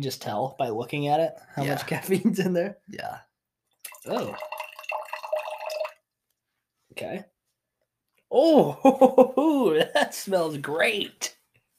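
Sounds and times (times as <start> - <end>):
speech: 0.0 - 3.3, 4.0 - 4.5, 6.9 - 7.3, 8.3 - 11.4
caffeine and creatine drink poured from a can into a cup: 3.8 - 6.0.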